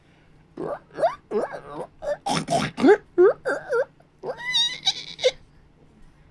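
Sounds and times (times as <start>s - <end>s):
person imitating pig grunts, snorts and squeals: 0.6s - 5.4s.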